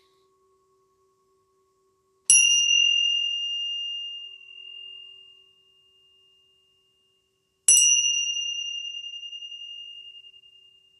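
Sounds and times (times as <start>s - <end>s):
Tibetan tingsha bells ringing: 2.3s - 10.9s.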